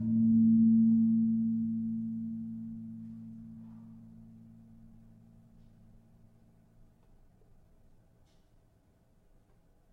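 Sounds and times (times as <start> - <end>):
gamelan tuned gong in A sharp: 0.0 - 5.4.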